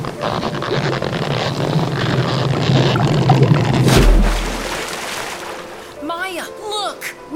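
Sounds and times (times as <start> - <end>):
gentle sea waves washing and lapping: 0.0 - 6.1
low rumble: 3.2 - 4.9
splash of a coconut shell touching water: 3.3 - 6.0.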